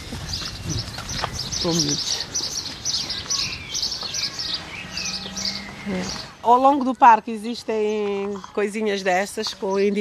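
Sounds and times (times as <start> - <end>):
birds chirping outdoors in high tweets: 0.0 - 9.9
speech: 1.6 - 2.2, 5.9 - 9.9.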